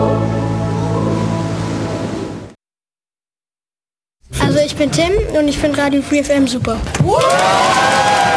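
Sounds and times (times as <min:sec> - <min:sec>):
church audience singing a hymn in harmony in Rarotonga Cook Islands: 0:00.0 - 0:02.2
speech: 0:04.8 - 0:08.2.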